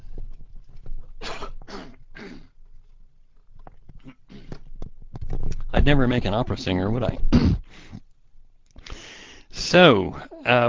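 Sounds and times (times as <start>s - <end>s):
stifled half-coughs after drinking water: 1.2s - 2.6s, 4.0s - 4.6s, 7.3s - 7.9s
speech: 5.8s - 7.6s, 9.7s - 10.6s.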